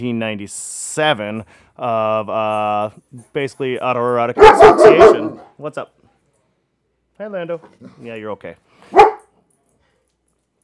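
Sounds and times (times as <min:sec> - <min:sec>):
speech: 0:00.0 - 0:06.0, 0:07.2 - 0:09.1
dog barking: 0:04.4 - 0:05.5, 0:08.9 - 0:09.3.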